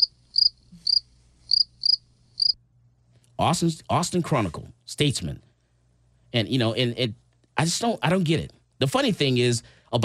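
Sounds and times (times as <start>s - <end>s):
crickets chirping: 0.0s - 2.6s
speech: 3.4s - 5.5s, 6.3s - 10.0s.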